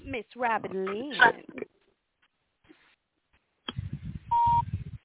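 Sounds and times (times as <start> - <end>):
speech: 0.2 - 1.6
short mid-pitched electronic beep on a phone line: 4.3 - 4.7.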